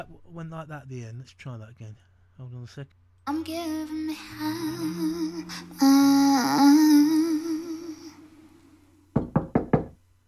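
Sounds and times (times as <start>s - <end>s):
speech: 0.0s - 7.2s
sustained wavering melodic tone: 3.3s - 8.6s.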